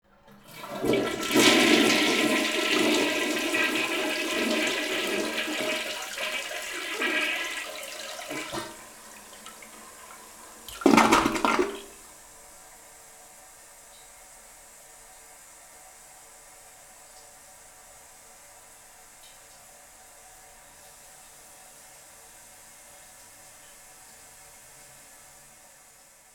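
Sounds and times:
clogged toilet gurgling: 0:00.1 - 0:12.4
toilet flushing: 0:00.1 - 0:26.3.

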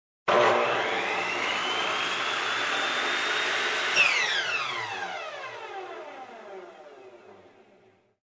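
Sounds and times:
drilling steel: 0:00.3 - 0:05.8.

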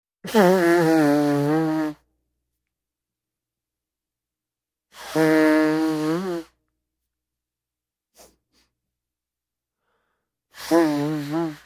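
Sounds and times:
person blowing nose on a handkerchief: 0:00.2 - 0:02.1, 0:04.9 - 0:06.6, 0:08.2 - 0:08.7, 0:10.5 - 0:11.6.

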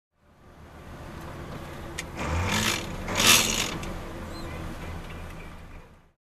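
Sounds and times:
garbage truck: 0:02.2 - 0:05.0.

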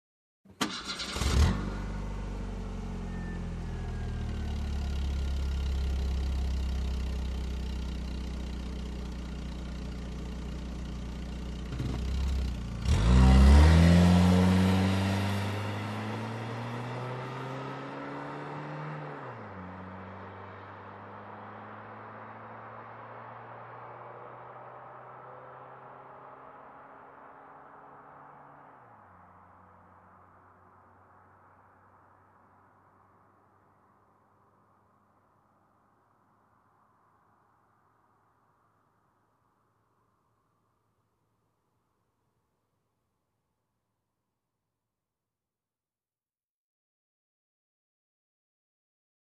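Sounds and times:
car engine ignition: 0:00.5 - 0:26.4
car driving away fast: 0:00.6 - 0:06.8, 0:11.5 - 0:30.5.

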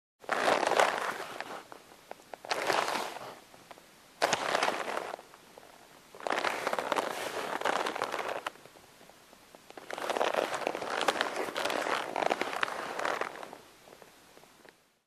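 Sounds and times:
polyester coated cloth folding: 0:00.3 - 0:01.8, 0:02.5 - 0:03.4, 0:04.2 - 0:05.3, 0:06.2 - 0:08.6, 0:09.7 - 0:13.6.

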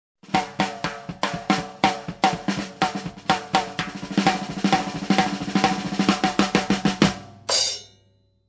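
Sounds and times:
long jazzy drum fill: 0:00.2 - 0:07.9.

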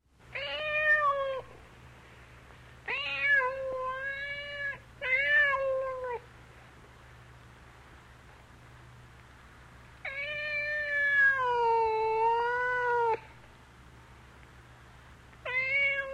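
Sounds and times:
cat meowing for food: 0:00.4 - 0:01.5, 0:02.9 - 0:06.2, 0:10.0 - 0:13.3, 0:15.4 - 0:16.1.

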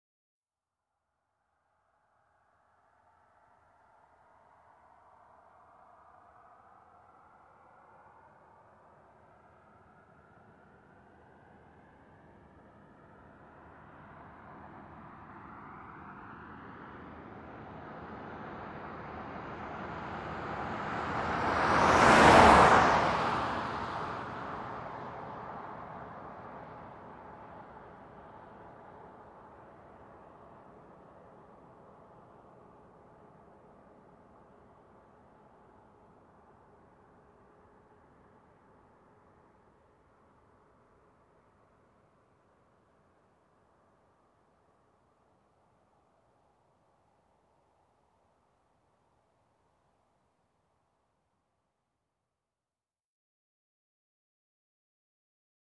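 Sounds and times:
car passing by: 0:02.7 - 0:46.3.

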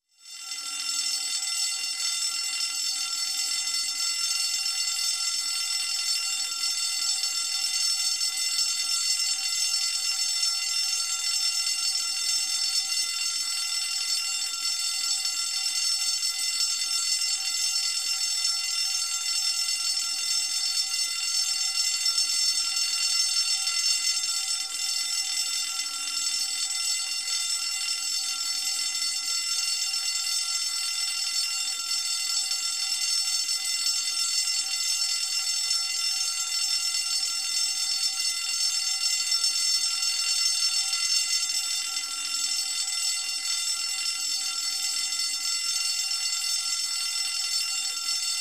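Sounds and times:
fire alarm bell ringing: 0:00.1 - 0:48.3.

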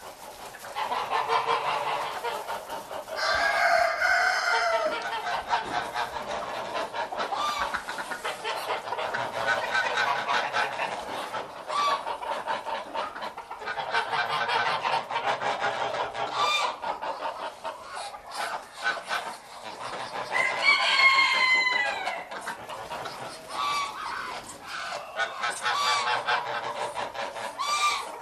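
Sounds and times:
chickens clucking and calling in a dense overlapping chorus: 0:00.0 - 0:28.1
rooster crowing: 0:03.2 - 0:05.0, 0:20.3 - 0:22.3.

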